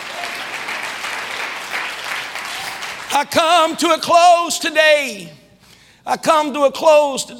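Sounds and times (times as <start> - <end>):
crowd clapping: 0.0 - 3.4
speech: 3.1 - 5.4, 6.1 - 7.3.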